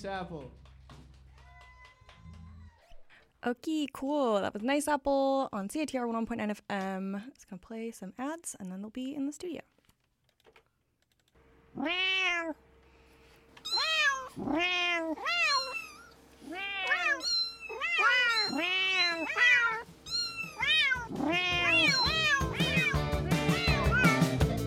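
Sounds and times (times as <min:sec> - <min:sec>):
speech: 0:00.0 - 0:00.7, 0:03.4 - 0:09.7, 0:11.8 - 0:12.6, 0:14.4 - 0:15.4, 0:21.1 - 0:23.0
cat meowing: 0:11.7 - 0:12.6, 0:13.6 - 0:24.4.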